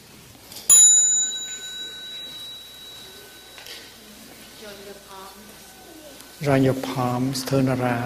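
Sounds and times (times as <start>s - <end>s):
small mindfulness bell struck: 0.7s - 5.7s
speech: 4.7s - 5.7s, 6.4s - 8.0s.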